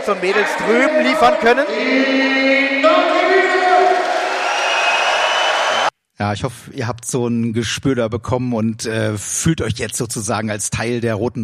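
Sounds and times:
speech: 0.0 - 3.2, 6.2 - 11.4
large arena crowd cheering and chanting before a game: 0.0 - 5.9.

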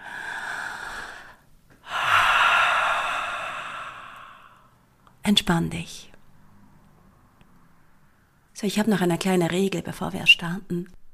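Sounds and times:
deep breathing in and out during a guided relaxation exercise: 0.0 - 4.8
speech: 5.3 - 6.1, 8.6 - 11.0.

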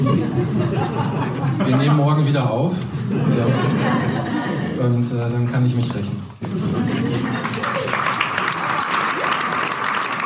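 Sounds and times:
laughter: 0.0 - 5.3, 6.4 - 9.7
speech: 1.7 - 6.9
sizable crowd applauding: 7.0 - 10.2.

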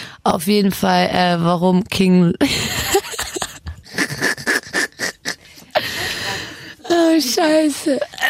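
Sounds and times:
speech: 0.2 - 2.8, 7.2 - 8.2
laughter: 2.4 - 6.8
heavy rhythmic wheezy breathing: 5.4 - 6.9.

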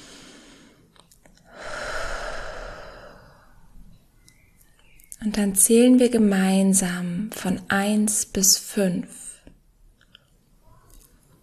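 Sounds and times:
deep breath in and out during a guided relaxation exercise: 0.0 - 3.8
speech: 5.2 - 9.2.

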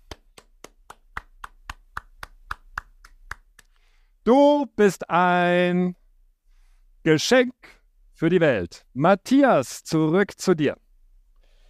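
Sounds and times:
crisp hand claps: 0.0 - 3.8
speech: 4.2 - 6.0, 7.0 - 10.8.

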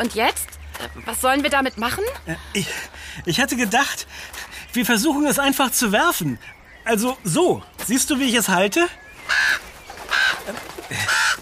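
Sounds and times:
speech: 0.0 - 9.6
quiet outdoor background: 0.0 - 11.4
raven cawing: 9.2 - 11.4.

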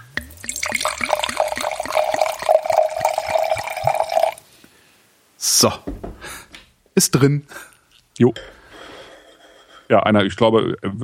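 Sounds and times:
water pouring into a glass: 0.0 - 4.4
speech: 5.6 - 5.9, 7.0 - 8.6, 9.9 - 11.0.

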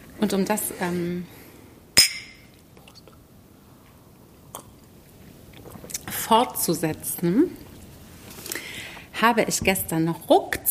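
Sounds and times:
speech: 0.2 - 1.4, 6.3 - 7.6, 9.2 - 10.6
glasses clinking in a toast: 2.0 - 2.6.

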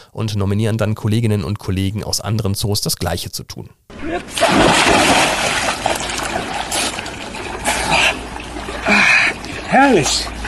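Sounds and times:
speech: 0.1 - 5.2, 9.7 - 10.4
water churning and sloshing: 3.9 - 10.4
person jumping into a water pool with a splash: 4.3 - 8.9.

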